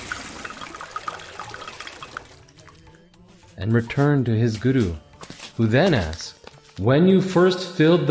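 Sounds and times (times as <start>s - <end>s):
water being poured out in a splashing stream: 0.0s - 3.0s
speech: 3.6s - 8.0s.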